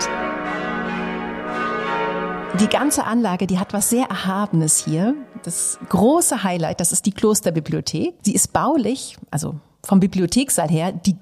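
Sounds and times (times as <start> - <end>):
monastery church bells pealing in Styria: 0.0 - 6.7
speech: 2.6 - 11.1.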